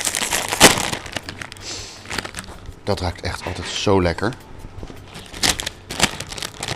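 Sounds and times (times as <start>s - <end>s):
plastic bag of nacho cheese corn snacks being torn open: 0.0s - 3.1s, 5.1s - 6.7s
speech: 2.9s - 4.5s.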